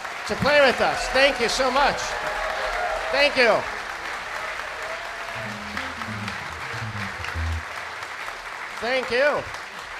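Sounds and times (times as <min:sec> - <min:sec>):
audience applause at an orchestra concert: 0:00.0 - 0:09.9
speech: 0:00.3 - 0:02.4, 0:03.1 - 0:03.8, 0:08.8 - 0:09.6
faint murmurs: 0:04.8 - 0:07.7
faint low tones: 0:05.3 - 0:07.7.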